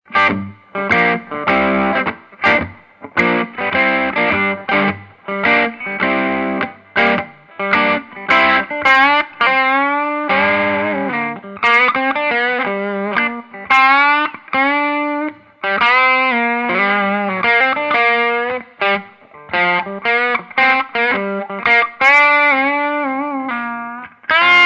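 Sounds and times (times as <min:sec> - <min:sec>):
overdriven hot slag sound: 0:00.1 - 0:24.6.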